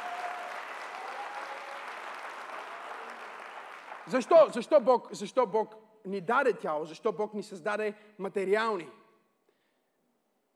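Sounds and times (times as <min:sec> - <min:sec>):
audience applauding: 0:00.0 - 0:04.5
speech: 0:04.1 - 0:09.0.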